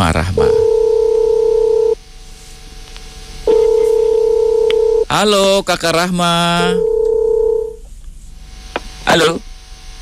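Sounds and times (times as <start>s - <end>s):
steady electronic telephone tone while a call is placed: 0.4s - 2.0s, 3.5s - 5.1s, 6.6s - 7.8s
speech: 5.2s - 6.9s, 9.2s - 9.4s.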